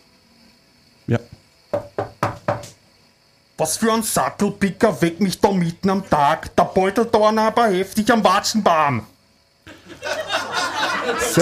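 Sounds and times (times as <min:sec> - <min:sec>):
speech: 0:01.1 - 0:01.4, 0:03.6 - 0:09.1, 0:11.1 - 0:11.4
firm knocking on a wooden door: 0:01.7 - 0:02.8
laughter: 0:09.7 - 0:11.4.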